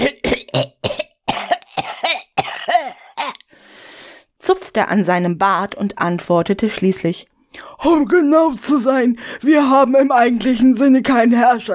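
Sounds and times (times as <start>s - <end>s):
person clearing throat with rough gravelly hacks: 0.0s - 3.4s
short coughs: 0.0s - 3.4s
breathy exhale: 3.5s - 4.3s
speech: 4.5s - 11.7s.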